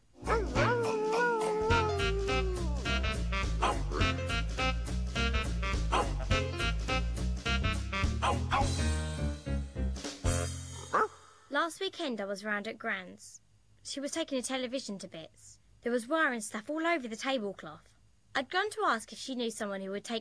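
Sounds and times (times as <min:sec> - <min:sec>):
dog howling: 0:00.3 - 0:02.9
loud steady rhythmic backing: 0:01.8 - 0:10.8
speech: 0:11.9 - 0:20.1.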